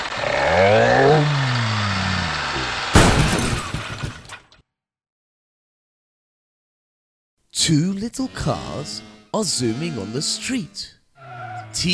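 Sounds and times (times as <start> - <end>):
big truck engine humming: 0.0 - 3.0, 8.1 - 11.9
loud crash of something shattering: 2.8 - 4.5
speech: 7.7 - 11.9.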